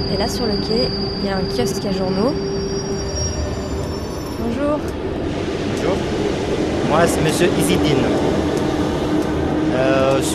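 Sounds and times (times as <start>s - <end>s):
train wheels squealing at an underground station platform: 0.0s - 4.9s
rumbling noise: 0.0s - 10.3s
speech: 0.1s - 2.7s, 4.5s - 5.1s, 5.8s - 8.4s, 9.8s - 10.3s.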